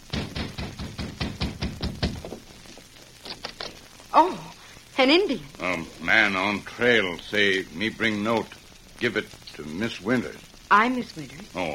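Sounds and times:
knocking on the wooden door of a ranch house: 0.0s - 2.4s
speech: 4.1s - 11.7s.

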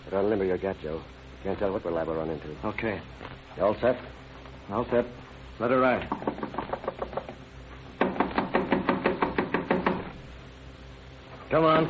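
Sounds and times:
speech: 0.1s - 6.3s, 11.5s - 11.8s
knocking on a rooming house door: 6.1s - 7.4s, 8.0s - 10.2s.

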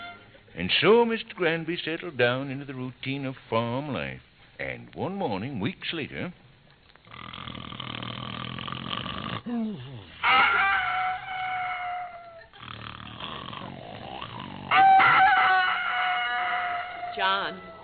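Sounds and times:
speech: 0.6s - 6.4s
low rumbling snore-like breathing: 7.0s - 10.1s, 12.5s - 14.7s
rooster crowing on a farm: 10.2s - 12.5s, 14.7s - 17.8s.

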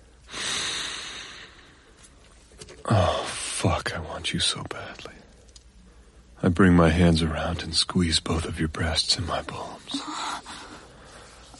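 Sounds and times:
deep inhale through the nose pressed into hair: 0.3s - 1.9s
speech: 2.9s - 5.2s, 6.4s - 10.1s.

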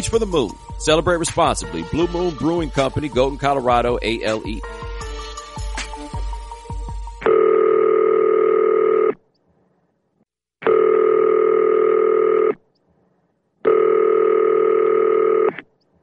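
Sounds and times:
speech: 0.0s - 4.8s
telephone ringing through to a voicemail line: 7.2s - 9.1s, 10.7s - 12.5s, 13.7s - 15.5s.

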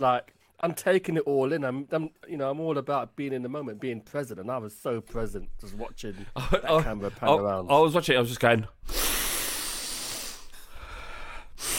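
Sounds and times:
speech: 0.0s - 9.0s
burst of air: 8.8s - 10.6s, 11.5s - 11.7s
deep exaggerated inhale: 8.8s - 11.7s.

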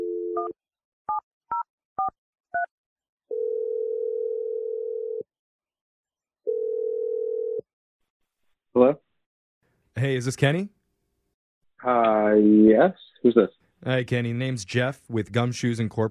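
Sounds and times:
telephone dial tone: 0.0s - 0.6s, 3.3s - 5.3s, 6.5s - 7.6s
long flat telephone ringing tones: 3.3s - 5.2s, 6.5s - 7.6s
speech: 10.0s - 10.8s, 11.8s - 16.1s.

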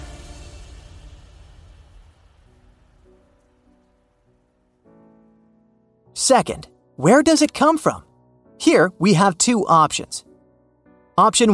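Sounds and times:
steady rainfall: 0.0s - 4.7s
speech: 6.2s - 10.3s, 11.2s - 11.5s.

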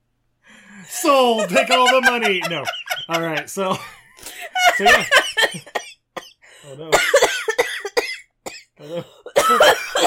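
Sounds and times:
speech: 0.9s - 4.0s, 4.8s - 5.8s, 6.6s - 7.3s, 8.8s - 10.0s
laughter: 1.0s - 5.8s
person coughing and sputtering into a microphone: 5.5s - 10.0s.

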